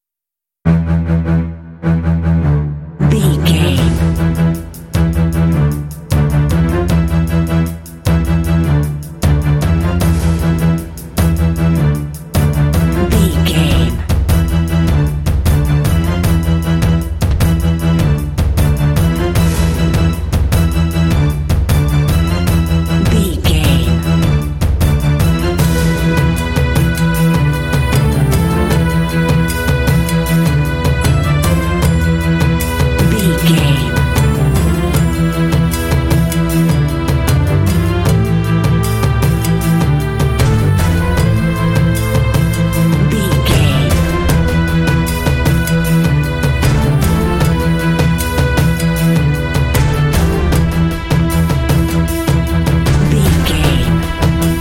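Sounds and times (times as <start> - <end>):
orchestral tension and suspense music: 0.7 - 54.6.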